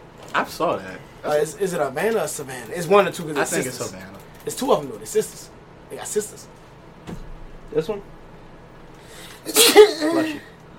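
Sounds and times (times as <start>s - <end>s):
speech: 0.4s - 6.6s, 7.7s - 8.1s, 9.4s - 10.5s
person sneezing: 9.3s - 10.5s.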